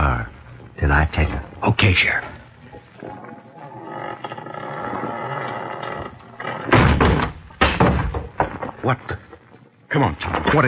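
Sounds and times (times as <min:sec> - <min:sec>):
speech: 0:00.8 - 0:02.4, 0:08.8 - 0:09.2, 0:09.9 - 0:10.6
heavy door grinding and rumbling as it is shoved open: 0:03.1 - 0:09.5
heavy door thudding and banging as it gives way: 0:06.6 - 0:08.9.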